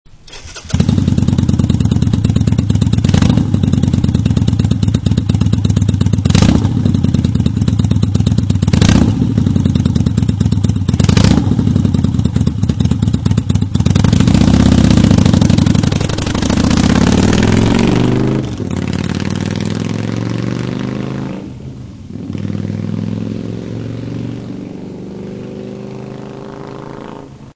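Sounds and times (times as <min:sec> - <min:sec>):
Honda Shadow ACE 750 V-twin motorcycle engine running: 0:00.4 - 0:27.2.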